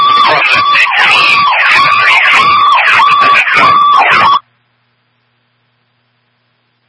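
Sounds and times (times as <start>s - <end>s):
emergency vehicle siren wailing: 0.0s - 4.4s.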